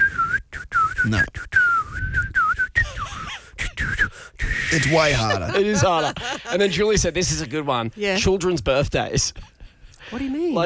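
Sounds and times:
person whistling while trying to smile: 0.0s - 5.6s
speech: 1.0s - 1.6s, 4.7s - 9.5s, 10.1s - 10.6s
laughter: 4.7s - 7.4s.

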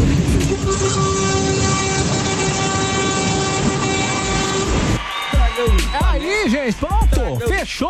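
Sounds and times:
car horns honking together: 0.0s - 7.6s
speech: 7.7s - 7.8s.

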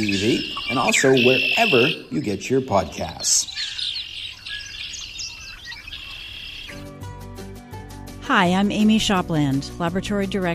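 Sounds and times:
sustained musical tone: 0.0s - 2.2s
speech: 0.0s - 3.8s, 8.3s - 10.5s
backyard birds in Vermont chirping and twittering: 0.0s - 6.9s.

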